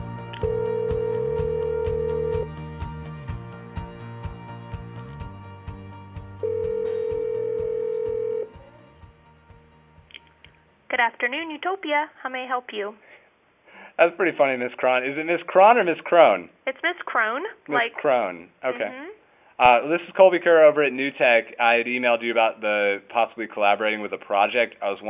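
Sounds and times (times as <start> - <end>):
short electronic telephone dialing tones: 0.4 - 2.5, 6.5 - 8.5
speech: 11.2 - 13.1, 14.0 - 25.0.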